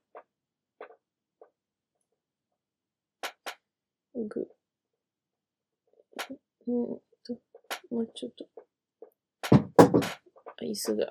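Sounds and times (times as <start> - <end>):
speech: 4.2 - 4.6, 6.7 - 8.6, 10.6 - 11.0
chair thunking, knocking and creaking: 9.4 - 10.2.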